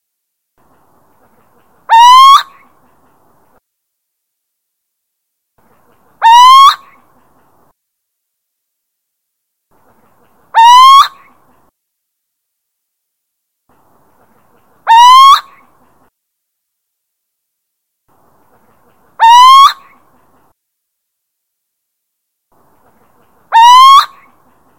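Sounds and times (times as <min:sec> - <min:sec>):
little owl territorial call in Drenthe, Netherlands: 0:01.9 - 0:02.6, 0:06.2 - 0:06.8, 0:10.6 - 0:11.2, 0:14.9 - 0:15.6, 0:19.2 - 0:19.9, 0:23.5 - 0:24.3.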